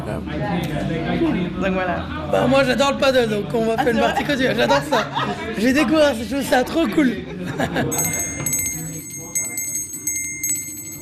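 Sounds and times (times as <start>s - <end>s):
faint murmur: 0.0s - 10.9s
speech: 0.1s - 8.2s
laughter: 3.7s - 5.9s, 6.8s - 8.5s
small handbell rung to announce the next round of a game: 7.9s - 10.9s.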